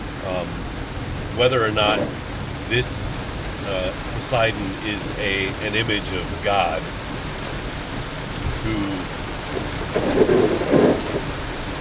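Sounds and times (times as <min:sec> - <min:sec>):
low rumbling under heavy rain: 0:00.0 - 0:11.7
torrential heavy rain pouring: 0:00.0 - 0:11.7
speech: 0:00.2 - 0:00.7, 0:01.4 - 0:07.0, 0:08.6 - 0:09.2, 0:10.0 - 0:10.8.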